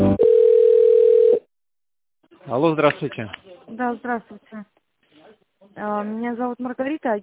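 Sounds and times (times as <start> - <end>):
loud steady telephone line tone during call transfer: 0.2 - 1.5
speech: 2.7 - 4.7, 5.8 - 7.2.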